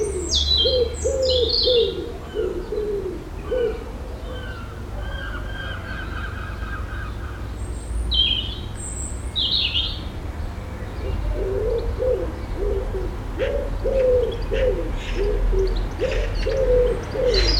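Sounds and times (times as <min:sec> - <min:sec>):
pigeon cooing on an urban suburban street: 0:00.0 - 0:07.2, 0:11.0 - 0:17.5
light traffic rumble: 0:00.0 - 0:17.5.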